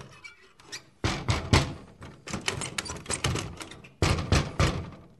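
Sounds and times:
knocking while trying to open a door: 1.0s - 2.0s, 4.0s - 5.1s.

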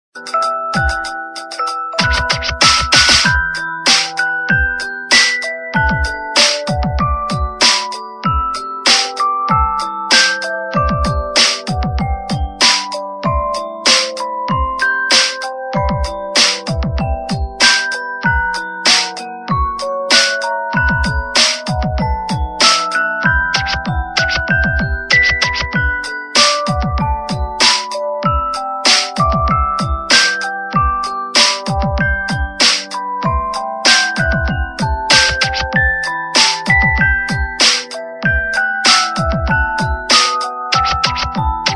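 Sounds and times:
phone ringtone: 0.2s - 41.7s.

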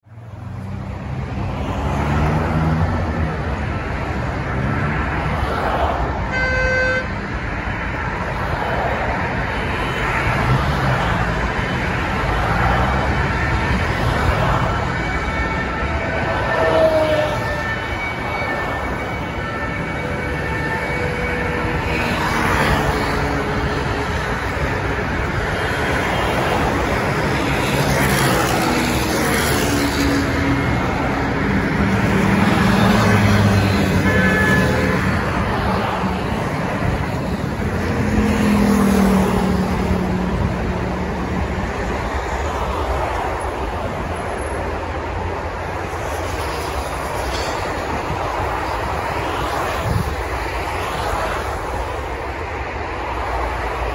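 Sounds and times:
road traffic: 0.0s - 53.9s.

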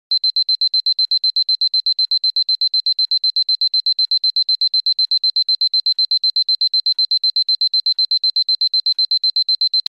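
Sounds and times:
alarm clock fast beeping: 0.2s - 9.8s.

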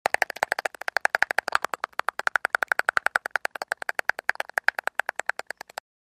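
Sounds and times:
teeth chattering from cold: 0.0s - 5.9s.

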